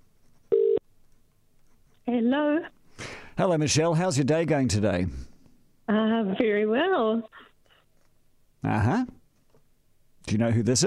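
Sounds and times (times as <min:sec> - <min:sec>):
telephone electronic ringback tone on an outgoing call: 0:00.5 - 0:00.8
speech: 0:02.1 - 0:02.8, 0:03.4 - 0:05.3, 0:05.9 - 0:07.5, 0:08.6 - 0:09.2, 0:10.3 - 0:10.8.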